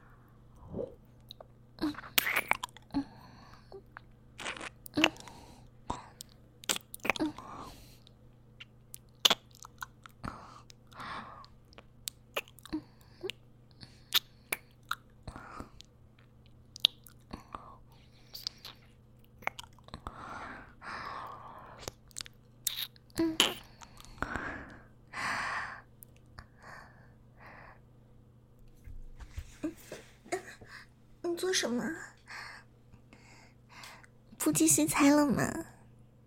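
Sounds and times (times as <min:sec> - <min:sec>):
faint steady hum: 0:00.0 - 0:36.2
person chewing and eating something with crisp crunches: 0:00.6 - 0:02.9, 0:03.8 - 0:05.3, 0:08.6 - 0:11.0, 0:11.6 - 0:13.4, 0:14.0 - 0:17.5, 0:18.2 - 0:20.2, 0:21.2 - 0:24.2
speech: 0:31.6 - 0:32.1, 0:34.6 - 0:35.6.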